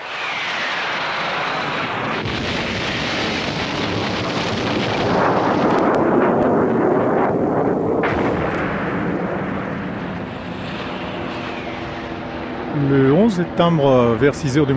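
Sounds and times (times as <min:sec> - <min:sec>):
aircraft engines roaring overhead during bombardment of the presidential palace: 0:00.0 - 0:14.7
heavy explosions during bombardment of the presidential palace: 0:00.1 - 0:12.9
artillery booms: 0:00.6 - 0:12.2
speech: 0:13.6 - 0:14.7.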